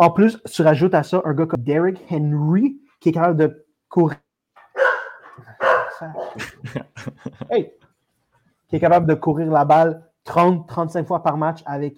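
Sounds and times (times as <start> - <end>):
speech: 0.0 - 4.2, 5.6 - 7.8, 8.7 - 11.9
dogs barking and yipping: 4.6 - 6.6
laughter: 6.2 - 7.8.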